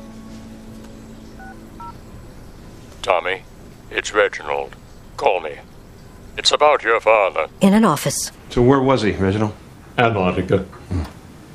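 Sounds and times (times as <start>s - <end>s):
low steady hum: 0.0s - 10.4s
cell phone keypad dialing tones: 1.4s - 2.0s
speech: 3.0s - 5.7s, 6.4s - 11.1s.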